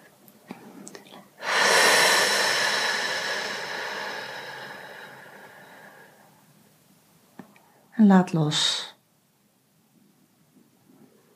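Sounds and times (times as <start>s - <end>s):
exhale through the mouth on an F sound in a relaxation breathing exercise: 1.4s - 6.3s
speech: 8.0s - 8.9s.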